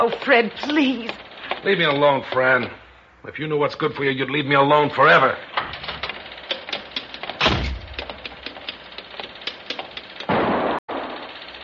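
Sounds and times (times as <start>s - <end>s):
speech: 0.0s - 5.5s
heavy gun blasts: 7.4s - 8.0s
gunshots: 7.4s - 8.1s, 10.3s - 11.2s.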